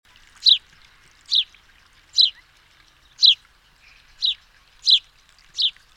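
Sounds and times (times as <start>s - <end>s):
House sparrow Passer domesticus chirps: 0.4s - 0.6s, 1.3s - 1.5s, 2.1s - 2.4s, 3.0s - 5.9s.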